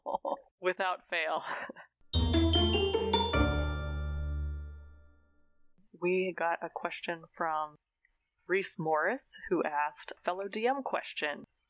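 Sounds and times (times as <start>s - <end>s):
speech: 0.6s - 1.8s, 6.0s - 7.8s, 8.5s - 11.5s
fairy bells tinkling bell chimes: 2.2s - 4.8s.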